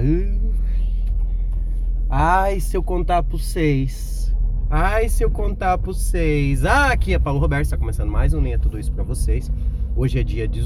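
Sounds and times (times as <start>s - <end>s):
old car low engine rumble: 0.0s - 10.6s
speech: 2.2s - 10.6s.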